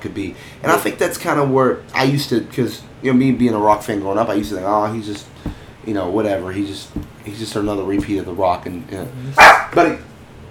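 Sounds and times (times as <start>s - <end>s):
speech: 0.0s - 10.1s
dog barking: 9.4s - 9.8s.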